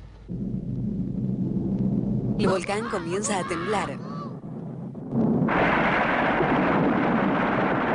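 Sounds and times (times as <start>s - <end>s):
steady low rumble: 0.1s - 2.9s, 4.0s - 7.9s
speech: 2.4s - 4.0s
fireworks exploding at a volcano in sharp bursts and crackles: 4.6s - 7.9s.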